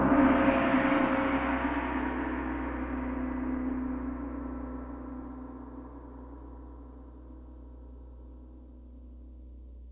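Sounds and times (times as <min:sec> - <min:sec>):
single open dry gong strike: 0:00.0 - 0:06.2.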